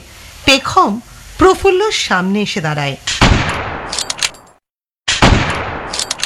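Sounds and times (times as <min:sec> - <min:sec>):
speech: 0:00.6 - 0:03.6
pistol gunshots fired by a man: 0:03.1 - 0:04.0, 0:05.1 - 0:06.2.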